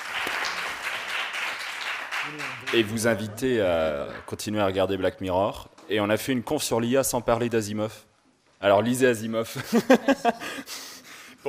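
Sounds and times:
audience applause at the end of a conference talk: 0.0 - 3.5
speech: 2.2 - 10.8
laughter: 9.5 - 10.9.

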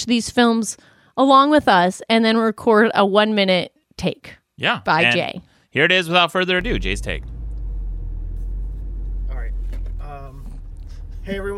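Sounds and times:
speech: 0.0 - 7.3, 11.2 - 11.5
deep engine rumble inside a moving car: 6.6 - 11.5.

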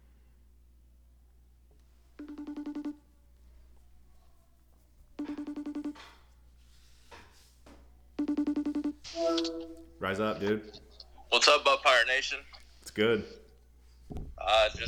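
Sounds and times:
quiet hum: 0.0 - 14.8
warbling ringing tone of an outgoing phone call: 2.2 - 3.0, 5.2 - 6.0, 8.2 - 10.4
speech: 9.4 - 10.8, 11.4 - 13.4, 14.5 - 14.8.

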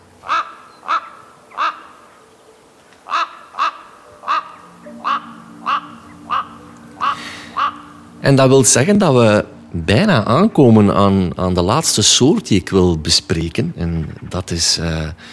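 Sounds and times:
Eurasian jay calling: 0.0 - 2.2, 3.0 - 8.7
quiet hum: 0.0 - 15.3
speech: 8.3 - 15.3.

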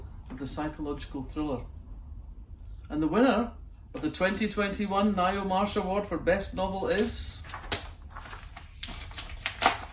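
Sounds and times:
speech: 0.4 - 1.8, 2.9 - 7.7
paper envelope being opened at an award announcement: 6.9 - 9.9.

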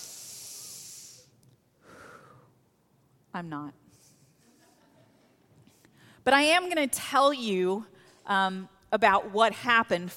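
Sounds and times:
slow deep cleansing breath: 0.0 - 2.6, 5.7 - 6.2
speech: 3.4 - 3.8, 6.3 - 10.1.

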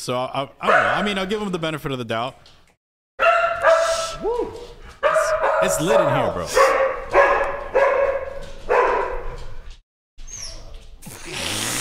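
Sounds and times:
speech: 0.0 - 2.6, 4.2 - 4.8, 5.6 - 6.9
dog barking: 0.6 - 1.2, 3.2 - 4.2, 5.0 - 9.5.

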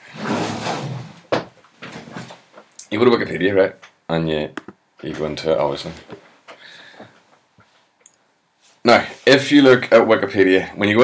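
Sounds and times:
chair dragged and shifted: 0.1 - 1.2
speech: 2.9 - 6.2, 8.8 - 11.0.

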